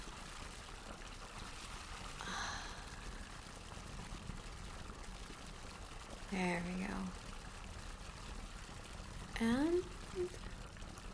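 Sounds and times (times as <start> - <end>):
water pouring from two spouts into a filling bath: 0.0 - 11.1
speech: 6.3 - 7.2, 9.4 - 10.4.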